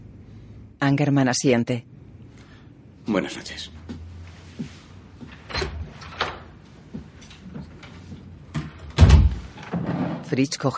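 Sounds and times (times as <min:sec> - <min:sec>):
speech: 0:00.8 - 0:02.0, 0:03.1 - 0:03.9, 0:10.3 - 0:10.7
house door creaking: 0:05.3 - 0:06.5, 0:08.5 - 0:10.3
house door shutting thud: 0:08.6 - 0:10.0.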